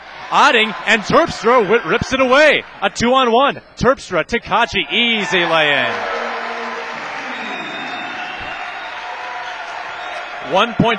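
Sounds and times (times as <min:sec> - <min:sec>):
large basketball crowd with student section yelling and cheering during a game: 0:00.0 - 0:03.8, 0:04.5 - 0:10.9
speech: 0:00.3 - 0:06.1, 0:10.5 - 0:10.9.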